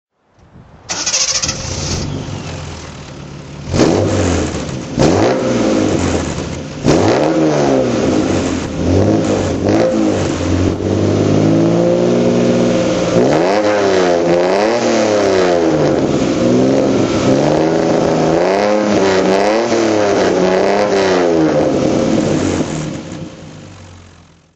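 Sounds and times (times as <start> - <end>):
Triumph TR6 motorcycle engine throttle revving: 0.9 - 24.5.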